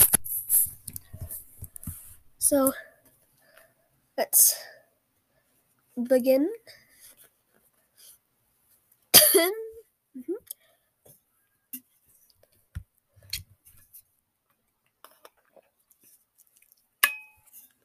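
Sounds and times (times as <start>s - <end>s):
speech: 2.5s - 2.9s, 4.2s - 4.7s, 6.0s - 6.8s, 9.4s - 9.6s
person coughing: 9.2s - 9.7s.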